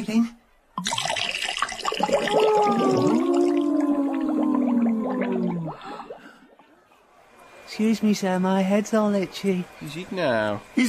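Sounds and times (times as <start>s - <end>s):
speech: 0.0s - 1.0s, 7.8s - 10.8s
sheep dip poured into a water tank: 0.8s - 6.6s.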